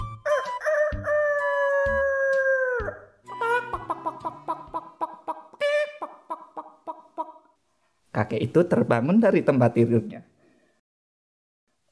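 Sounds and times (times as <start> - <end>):
rooster crowing in the morning: 0.2 - 3.8
speech: 8.2 - 10.2.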